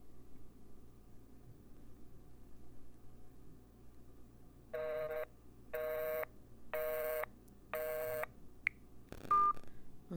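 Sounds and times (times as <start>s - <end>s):
low hum: 0.0s - 10.1s
cell phone keypad dialing tones: 4.8s - 8.3s.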